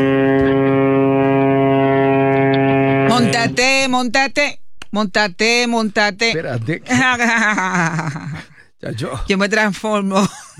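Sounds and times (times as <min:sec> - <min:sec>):
ship's horn sounding a long deep blast: 0:00.0 - 0:04.2
speech: 0:03.4 - 0:10.5
laughter: 0:06.4 - 0:08.6.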